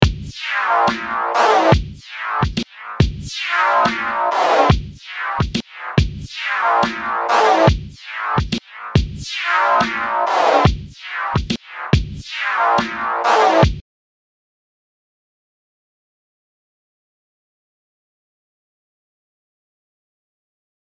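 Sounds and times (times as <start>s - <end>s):
sidechained music: 0.0s - 13.8s.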